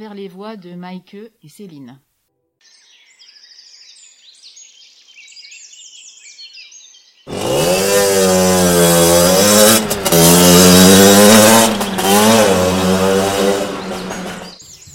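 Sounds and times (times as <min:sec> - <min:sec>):
speech: 0:00.0 - 0:02.1
motor vehicle engine revving past: 0:07.3 - 0:14.6.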